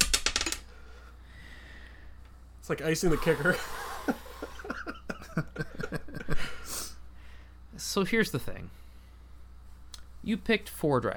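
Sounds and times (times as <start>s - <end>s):
dice tumbling across a hard surface: 0.0s - 0.6s
speech: 2.7s - 4.2s, 7.9s - 8.8s, 10.3s - 11.1s.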